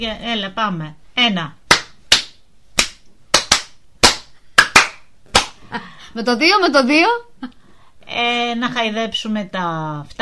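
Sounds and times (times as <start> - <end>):
speech: 0.0 - 1.6, 6.1 - 10.2
sharp loud hand claps: 1.7 - 5.6.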